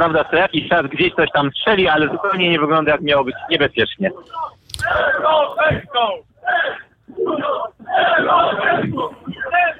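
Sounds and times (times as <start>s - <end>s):
speech: 0.0s - 9.1s
crowd of demonstrators shouting chants at a street rally: 4.2s - 9.7s.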